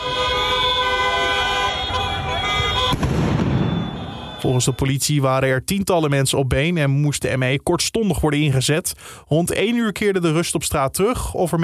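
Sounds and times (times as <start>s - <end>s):
car horns blaring at a street celebration after a national team win: 0.0s - 4.9s
firework bang and crackle from revellers' fireworks: 2.0s - 4.4s
speech: 4.5s - 11.6s.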